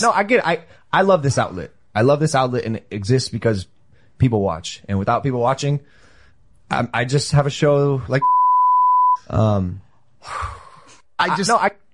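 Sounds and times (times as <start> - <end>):
speech: 0.0 - 6.0, 6.7 - 8.4, 9.2 - 10.6, 11.2 - 11.8
steady pure censor bleep over a spoken name: 8.2 - 9.3.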